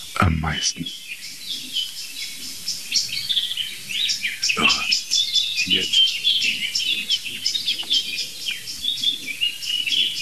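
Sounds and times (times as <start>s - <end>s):
soft steady hiss: 0.0s - 6.6s
blackbird and song thrush singing: 0.0s - 10.2s
speech: 0.2s - 1.8s, 5.7s - 6.0s.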